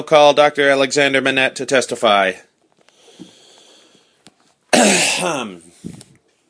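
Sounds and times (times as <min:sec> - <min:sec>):
speech: 0:00.0 - 0:02.5, 0:04.8 - 0:06.0
solicitor in a courtroom clearing his throat with a raspy rumble: 0:04.7 - 0:05.7.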